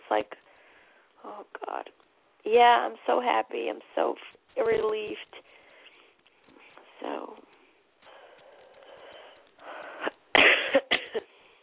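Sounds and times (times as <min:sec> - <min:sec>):
speech: 0:00.1 - 0:00.4, 0:01.3 - 0:05.5
person coughing: 0:10.3 - 0:11.3.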